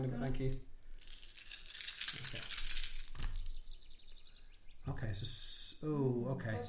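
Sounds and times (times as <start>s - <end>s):
speech: 0.0s - 0.7s, 4.9s - 6.6s
dice rattling and rolling on a table during a tabletop role-playing game: 0.2s - 3.6s.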